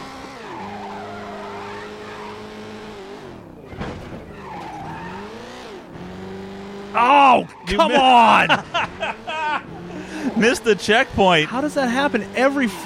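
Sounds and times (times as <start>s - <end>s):
racing video game car engine droning: 0.0s - 12.8s
racing video game car tires skidding and squealing: 0.0s - 12.8s
speech: 7.0s - 9.4s, 10.2s - 12.8s
laughter: 7.6s - 10.6s.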